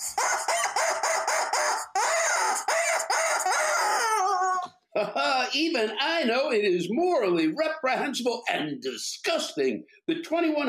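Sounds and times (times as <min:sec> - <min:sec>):
rubber chicken toy squawking: 0:00.0 - 0:04.7
speech: 0:05.0 - 0:10.6.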